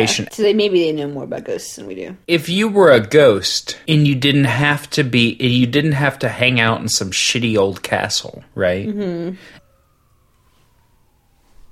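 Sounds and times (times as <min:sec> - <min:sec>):
speech: 0:00.0 - 0:09.6
low hum of ambient noise: 0:00.0 - 0:10.4
emergency sirens going by in a neighborhood: 0:09.4 - 0:11.6.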